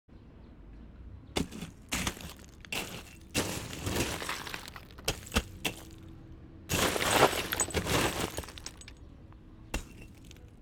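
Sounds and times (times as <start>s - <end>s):
digging in rubble: 1.4s - 6.1s, 6.7s - 9.1s, 9.7s - 10.6s.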